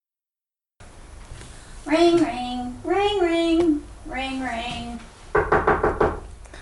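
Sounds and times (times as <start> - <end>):
speech: 1.8 - 5.1
firm knocks on a door: 5.3 - 6.3.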